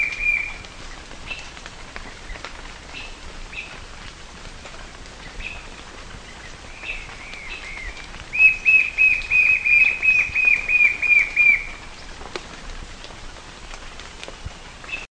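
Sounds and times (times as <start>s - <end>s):
White-shouldered fire-eye Pyriglena leucoptera whistled song: 6.8s - 11.7s.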